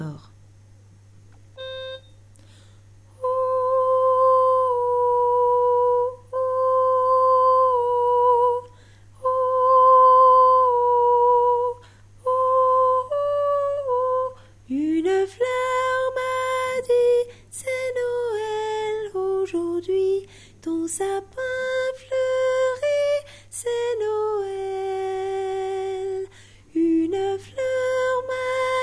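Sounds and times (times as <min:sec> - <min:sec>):
soprano singing: 0:03.2 - 0:28.8.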